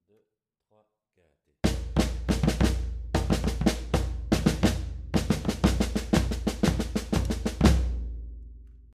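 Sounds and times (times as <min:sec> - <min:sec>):
batucada drumming in triple time: 0:01.6 - 0:08.3.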